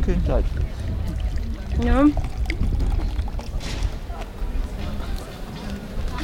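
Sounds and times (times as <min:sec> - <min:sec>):
speech: 0:00.0 - 0:03.1
faint murmuring voices: 0:00.0 - 0:06.2
woodruff-flavoured fizzy drink being poured: 0:01.0 - 0:03.6.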